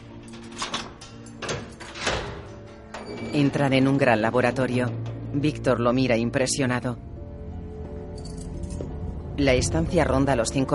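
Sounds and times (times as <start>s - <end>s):
door in an underground tunnel opening with scraping rattle: 0.2s - 5.7s
speech: 3.4s - 7.1s, 9.4s - 10.7s.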